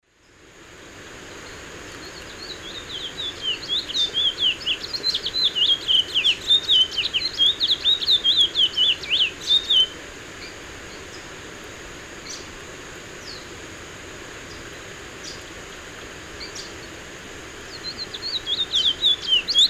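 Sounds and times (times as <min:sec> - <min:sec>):
Oryzoborus angolensis song in South American Eastern Lowlands: 0:01.3 - 0:11.3, 0:12.2 - 0:12.5, 0:13.2 - 0:13.5, 0:14.4 - 0:15.4, 0:16.4 - 0:17.0, 0:17.6 - 0:19.6.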